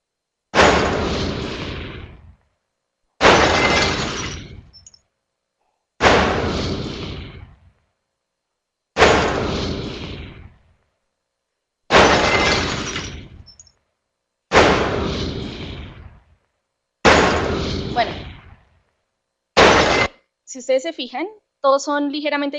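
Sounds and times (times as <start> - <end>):
loud sharp gunshot-like bangs: 0.5 - 2.4, 3.2 - 4.7, 6.0 - 7.7, 9.0 - 10.6, 11.9 - 13.6, 14.5 - 16.3, 17.0 - 18.7, 19.6 - 20.2
breaking glass and debris: 3.2 - 4.9, 12.0 - 13.7
speech: 18.0 - 18.2, 20.5 - 22.5.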